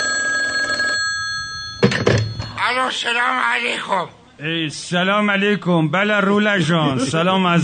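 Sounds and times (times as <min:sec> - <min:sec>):
desk telephone ringing with electronic trill: 0:00.0 - 0:02.8
speech: 0:02.7 - 0:07.6.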